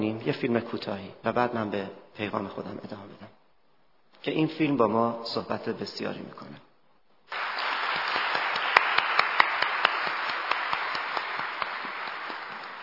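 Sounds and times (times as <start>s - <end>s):
speech: 0.0s - 3.4s, 4.2s - 6.7s
crowd applauding: 7.3s - 12.8s
sharp individual claps: 7.3s - 12.8s.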